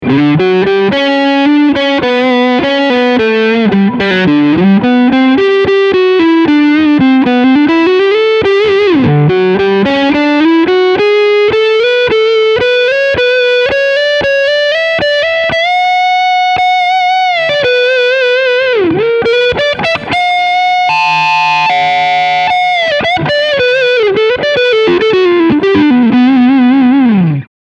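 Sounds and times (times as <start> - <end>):
crunchy electric guitar with both pickups: 0.0 - 27.5.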